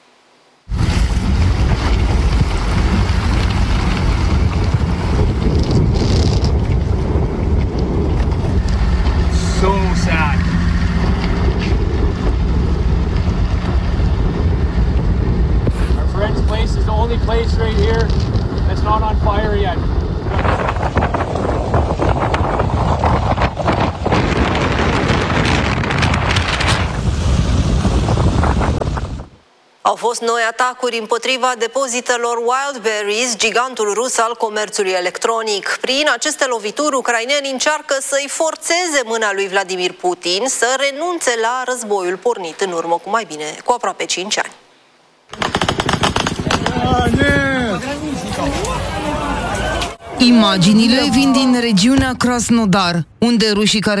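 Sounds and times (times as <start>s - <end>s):
strong wind gusts buffeting the microphone: 0.7s - 29.4s, 45.5s - 52.4s
speech: 30.1s - 44.6s, 50.2s - 53.9s.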